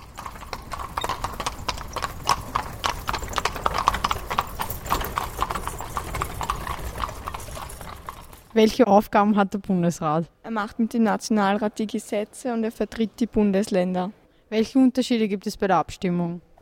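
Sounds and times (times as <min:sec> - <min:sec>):
horse hooves of a horse-drawn carriage clip-clopping on pavement: 0:00.0 - 0:08.5
speech: 0:08.6 - 0:16.5.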